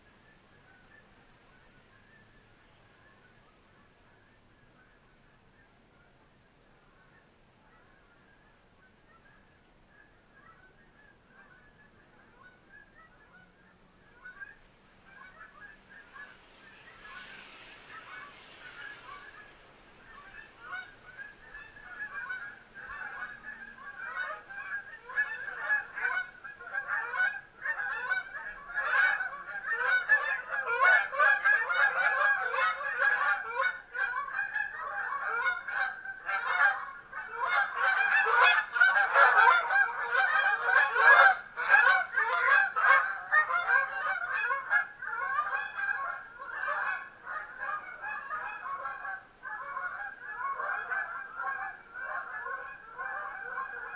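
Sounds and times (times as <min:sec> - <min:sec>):
Canada goose Branta canadensis: 0:00.2 - 0:53.9.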